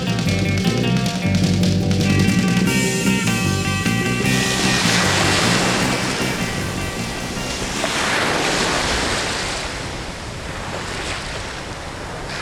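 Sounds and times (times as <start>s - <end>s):
faint musical tone: 0.0s - 7.9s
surf from breaking waves at the Bondi Beach seawall in Australia: 2.1s - 12.4s.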